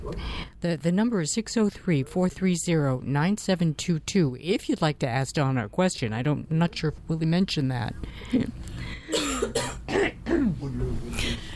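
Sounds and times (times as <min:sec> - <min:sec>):
speech: 0:00.1 - 0:11.4
two people coughing at once with throaty hacks: 0:09.0 - 0:10.6.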